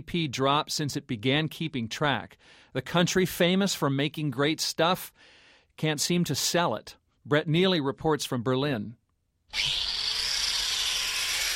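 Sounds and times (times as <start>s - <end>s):
speech: 0.0s - 10.0s
worker hand-drilling parts for a custom-made electric motor in Berlin: 9.5s - 11.5s.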